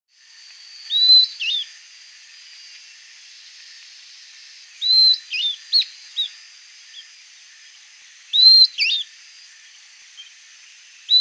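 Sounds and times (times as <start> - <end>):
Southern beardless tyrannulet whistled call: 0.8 - 1.7, 4.8 - 7.0, 8.3 - 9.1.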